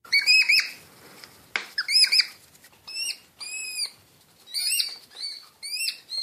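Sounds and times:
European hedgehogs mating, giving high thin squeaky calls: 0:00.1 - 0:00.8, 0:01.8 - 0:06.2.

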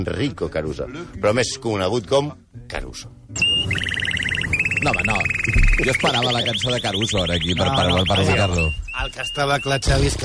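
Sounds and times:
speech: 0:00.0 - 0:03.5, 0:04.8 - 0:10.2
canary singing with whistle and trill: 0:03.4 - 0:09.8.

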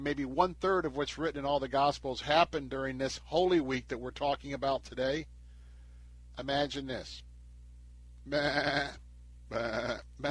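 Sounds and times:
speech: 0:00.0 - 0:05.4, 0:06.4 - 0:07.3, 0:08.2 - 0:10.2
lambs bleating: 0:08.3 - 0:10.2.

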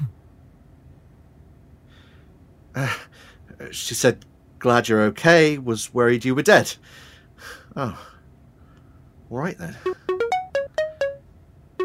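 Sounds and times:
speech: 0:02.8 - 0:03.1, 0:03.7 - 0:08.1, 0:09.3 - 0:10.1
mobile phone ringtone for an incoming call playing a short electronic melody: 0:09.8 - 0:11.2.

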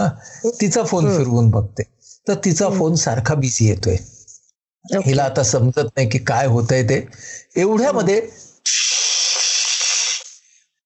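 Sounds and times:
speech: 0:00.1 - 0:04.2, 0:04.8 - 0:08.9
pressure cooker whistling steam in a kitchen: 0:08.6 - 0:10.4.

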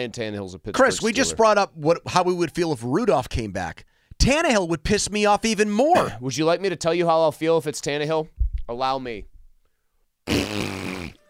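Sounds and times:
speech: 0:00.0 - 0:09.3, 0:10.3 - 0:10.8
voice imitating a wet fart: 0:00.8 - 0:01.4, 0:10.3 - 0:11.2.

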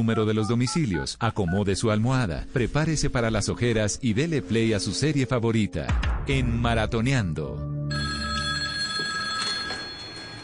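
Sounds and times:
speech: 0:00.0 - 0:07.7
old-fashioned telephone bell ringing: 0:07.9 - 0:10.4.

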